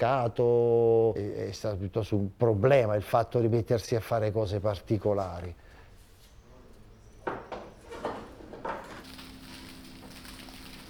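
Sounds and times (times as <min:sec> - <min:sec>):
speech: 0:00.0 - 0:05.6
freshly baked bread crackling in a bakery in Boiano: 0:08.8 - 0:10.8.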